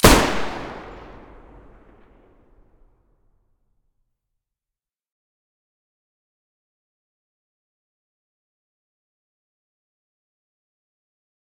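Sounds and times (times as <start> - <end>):
Taurus gun muzzle blast: 0.0 - 2.3.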